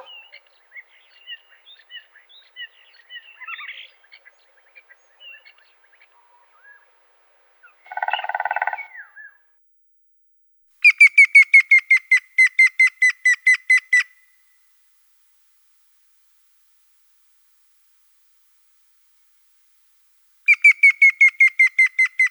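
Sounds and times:
Grey-headed woodpecker Picus canus whistled call series in Russia: 0:10.8 - 0:14.2, 0:20.5 - 0:22.2.

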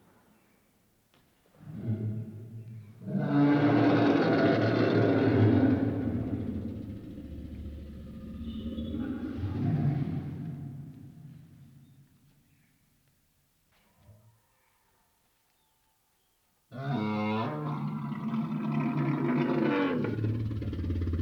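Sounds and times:
lion roaring: 0:01.6 - 0:10.9, 0:16.7 - 0:21.2
faint low sound: 0:05.9 - 0:12.2.

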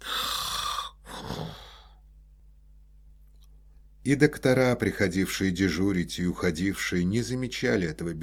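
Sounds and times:
man snoring while asleep: 0:00.0 - 0:01.9
speech: 0:04.1 - 0:08.2.

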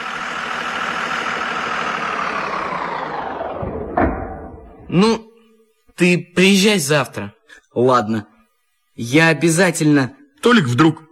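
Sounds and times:
bus engine idling at a stop: 0:00.0 - 0:05.0
speech: 0:04.9 - 0:05.3, 0:06.0 - 0:08.3, 0:09.0 - 0:11.0.

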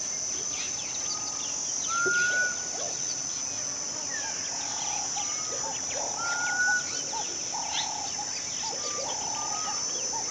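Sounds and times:
constant high hiss: 0:00.0 - 0:10.2
birds singing in a West African countryside: 0:00.5 - 0:03.5, 0:04.1 - 0:10.2.

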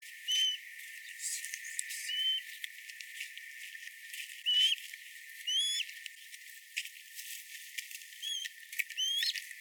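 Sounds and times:
steppe eagle chick thin whistled calls, Aquila nipalensis: 0:00.2 - 0:02.5, 0:04.4 - 0:04.8, 0:05.4 - 0:05.9, 0:08.2 - 0:09.4.

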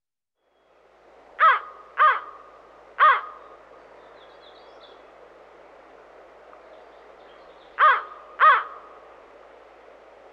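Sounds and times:
quiet background hiss: 0:00.4 - 0:10.3
American crow cawing: 0:01.4 - 0:02.4, 0:03.0 - 0:03.4, 0:07.8 - 0:08.8.

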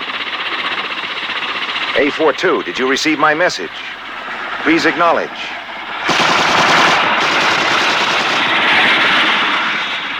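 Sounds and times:
helicopter engine droning: 0:00.0 - 0:10.1
speech: 0:02.0 - 0:04.0, 0:04.6 - 0:05.5
helicopter firing machine gun: 0:06.0 - 0:09.2.

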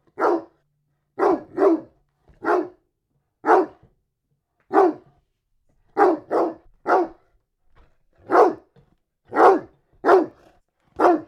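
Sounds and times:
dog barking in sharp woofs: 0:00.0 - 0:00.6, 0:01.2 - 0:02.8, 0:03.4 - 0:03.9, 0:04.7 - 0:05.1, 0:05.9 - 0:07.2, 0:08.2 - 0:08.7, 0:09.3 - 0:10.4, 0:11.0 - 0:11.2.

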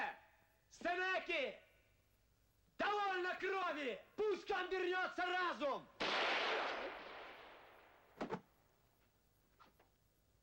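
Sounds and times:
hiss: 0:00.0 - 0:10.4
speech: 0:00.9 - 0:01.7, 0:03.2 - 0:07.1
gunshot during a police confrontation: 0:06.0 - 0:08.4.

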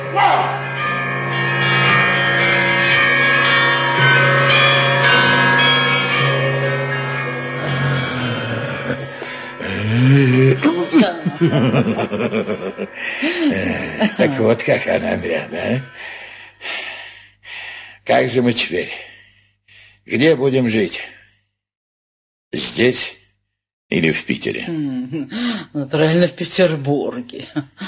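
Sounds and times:
church bells ringing: 0:00.0 - 0:17.2
people chuckling with laughter: 0:07.6 - 0:15.8
speech: 0:11.4 - 0:16.2, 0:18.1 - 0:19.1, 0:20.0 - 0:21.2, 0:22.5 - 0:23.2, 0:23.9 - 0:27.8.

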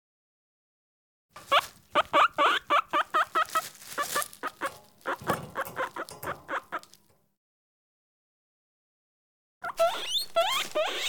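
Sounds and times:
caged guinea pig giving short rising squeaks: 0:01.4 - 0:07.0, 0:09.6 - 0:11.0.

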